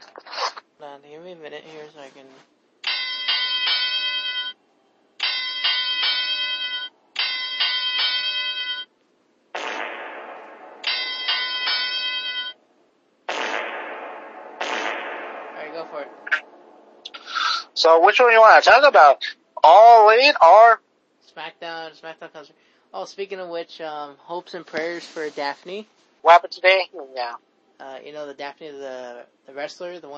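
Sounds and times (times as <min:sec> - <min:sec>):
wrestling ring bell clanging: 0:02.8 - 0:04.6, 0:05.2 - 0:08.9, 0:10.8 - 0:12.6
speech: 0:17.8 - 0:20.8, 0:21.9 - 0:30.1.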